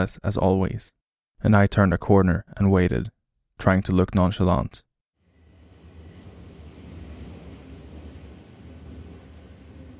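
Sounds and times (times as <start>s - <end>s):
speech: 0.0s - 4.9s
thin high-pitched whine: 5.2s - 9.9s
metro train rumbling through the station: 5.3s - 9.9s.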